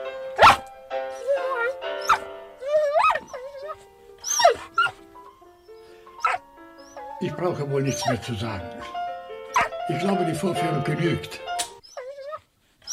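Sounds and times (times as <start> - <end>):
piano music from three pianos playing together: 0.0 - 11.9
dog howling and whining along to piano music: 0.4 - 5.0, 5.6 - 7.0, 7.9 - 8.2, 9.5 - 9.8, 11.8 - 12.9
speech: 7.2 - 8.9, 9.9 - 11.5.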